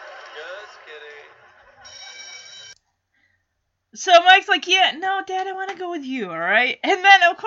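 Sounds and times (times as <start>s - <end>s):
laughter: 0.0s - 2.7s
speech: 0.4s - 2.0s, 3.9s - 7.4s
telephone ringing: 1.7s - 2.8s.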